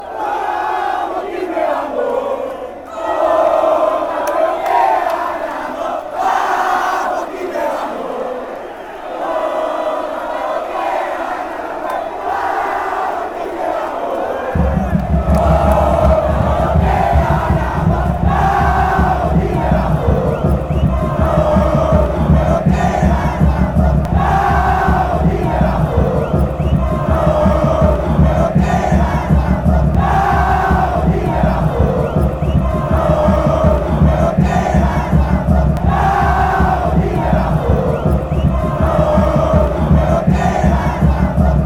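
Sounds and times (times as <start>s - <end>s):
crowd chanting: 0.0s - 41.6s.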